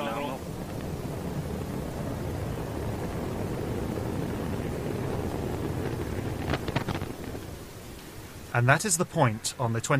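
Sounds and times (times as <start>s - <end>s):
rocket roaring after launch: 0.0s - 8.8s
crackling bursts of rocket exploding: 0.0s - 9.4s
speech: 8.6s - 9.9s.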